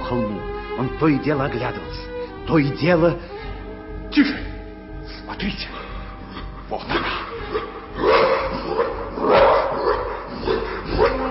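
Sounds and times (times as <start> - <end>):
speech: 0.1 - 3.3, 4.2 - 4.5, 5.3 - 5.8, 6.7 - 7.2
huge jet-black dog barking: 6.9 - 11.3.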